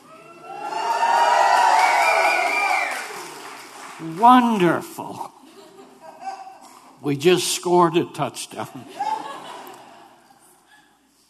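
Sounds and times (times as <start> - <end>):
large audience cheering and whooping: 0.0 - 3.6
speech: 4.2 - 5.3, 7.0 - 9.0
laughter: 5.4 - 7.0, 8.7 - 10.6.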